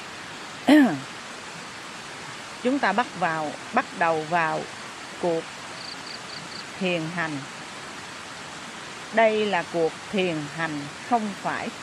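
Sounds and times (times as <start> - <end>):
strong fast-flowing water: 0.0 - 11.8
short vocal sound: 0.7 - 1.0
speech: 2.6 - 5.6, 6.8 - 7.6, 9.1 - 11.8.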